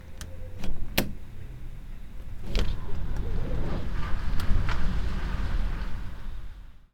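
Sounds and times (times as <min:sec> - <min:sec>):
wind through open window: 0:00.0 - 0:06.9.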